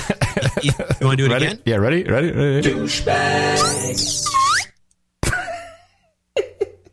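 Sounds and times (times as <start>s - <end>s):
speech: 0.1s - 4.5s
slide whistle swooping down and up: 3.6s - 4.7s.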